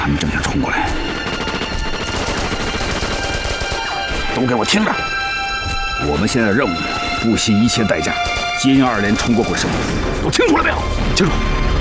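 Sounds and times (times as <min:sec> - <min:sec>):
speech: 0:00.1 - 0:01.1, 0:04.4 - 0:05.1, 0:06.0 - 0:11.5
machine guns firing during a battle: 0:01.0 - 0:04.3.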